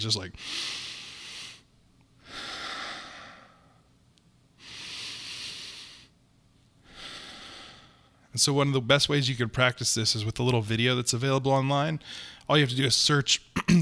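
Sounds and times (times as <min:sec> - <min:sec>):
speech: 0:00.0 - 0:00.9, 0:08.4 - 0:13.8
slow deep breathing in through the nose and out through the mouth: 0:00.4 - 0:03.9, 0:04.6 - 0:06.2, 0:06.8 - 0:08.3, 0:12.0 - 0:12.5.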